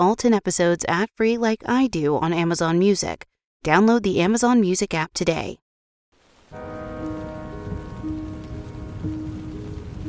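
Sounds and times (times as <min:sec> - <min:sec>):
speech: 0:00.0 - 0:05.6
rain pattering on canvas: 0:06.2 - 0:10.0
faint low drone: 0:06.6 - 0:10.0.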